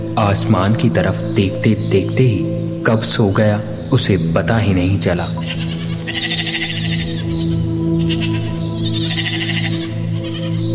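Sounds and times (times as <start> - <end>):
speech: 0.2 - 6.4
goats grazing in a forest bleating: 5.4 - 10.6.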